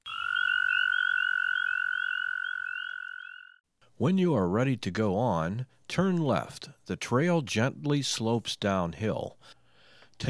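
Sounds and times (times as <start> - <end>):
American toad trilling call: 0.0 - 3.6
speech: 4.0 - 9.6.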